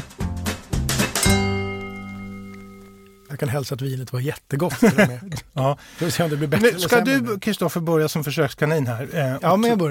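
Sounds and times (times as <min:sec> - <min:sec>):
wine glasses clinking in a toast: 0:01.2 - 0:03.5
speech: 0:03.4 - 0:09.9
laughter: 0:04.6 - 0:07.2.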